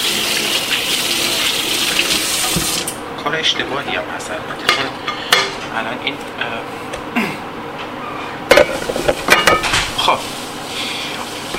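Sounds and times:
tap water running while rinsing a plate: 0:00.0 - 0:03.0, 0:08.6 - 0:11.5
speech: 0:02.6 - 0:05.1, 0:05.7 - 0:06.8.

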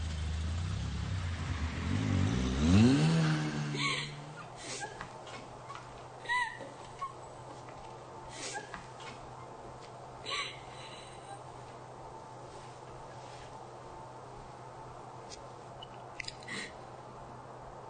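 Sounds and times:
car engine revving as the car drives off: 0:00.0 - 0:04.4.

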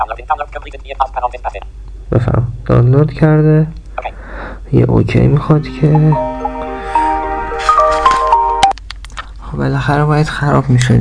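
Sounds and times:
speech: 0:00.0 - 0:03.8, 0:04.7 - 0:06.3, 0:09.6 - 0:10.9
mobile phone ringing with a melodic ringtone: 0:05.5 - 0:08.7.

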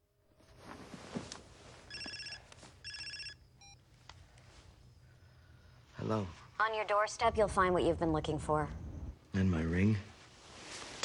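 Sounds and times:
faint electronic beep: 0:01.9 - 0:03.8
telephone ringing at home in trilling bursts: 0:01.9 - 0:03.8
speech: 0:06.1 - 0:10.1.

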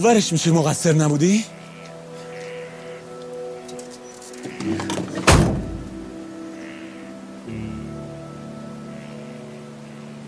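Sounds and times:
speech: 0:00.0 - 0:01.6
shuffling movement of someone climbing into a car: 0:04.3 - 0:06.0
solid car door slam: 0:04.8 - 0:06.0.

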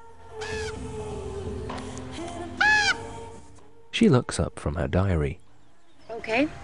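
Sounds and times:
crow cawing on a headstone: 0:02.6 - 0:03.0
speech: 0:04.0 - 0:05.4, 0:06.2 - 0:06.6.

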